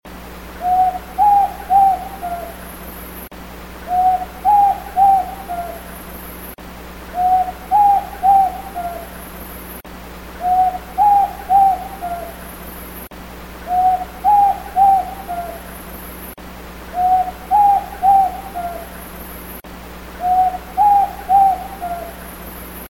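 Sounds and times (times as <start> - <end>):
Bare Shanked Screech Owl call: 0.6 - 3.0, 3.8 - 6.4, 7.1 - 9.6, 10.4 - 12.9, 13.6 - 16.1, 16.9 - 19.4, 20.2 - 22.8.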